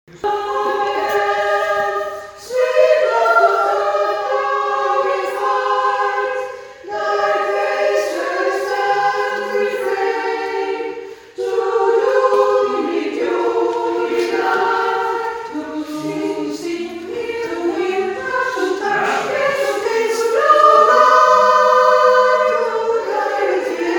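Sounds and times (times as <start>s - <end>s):
alto and soprano choir singing: 0.1s - 23.9s.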